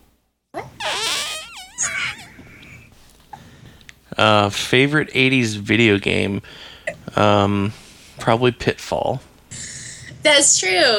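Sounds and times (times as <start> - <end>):
voice imitating a high-pitched fart: 0.6 - 2.6
speech: 4.2 - 9.3, 10.2 - 10.9.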